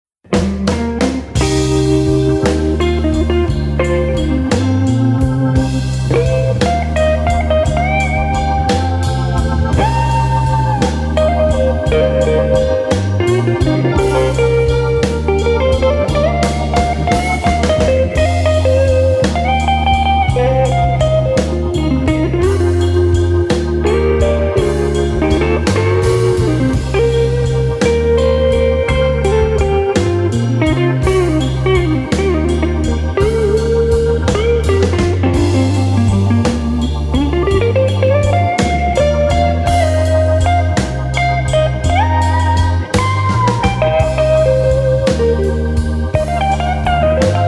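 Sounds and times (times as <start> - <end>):
contemporary slow blues music: 0.2 - 47.4.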